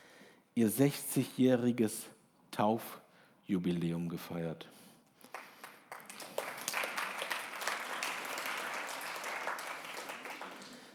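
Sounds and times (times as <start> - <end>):
speech: 0.6 - 4.8
audience applause: 5.3 - 10.9.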